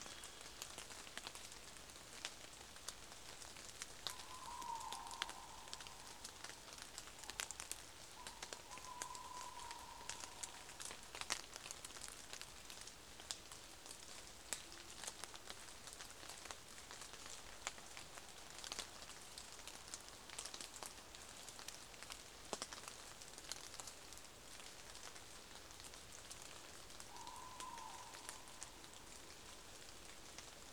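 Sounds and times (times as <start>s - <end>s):
rain in the Crecy forest: 0.0s - 30.7s
owl calling in the Crecy forest: 4.0s - 11.0s, 27.1s - 29.4s.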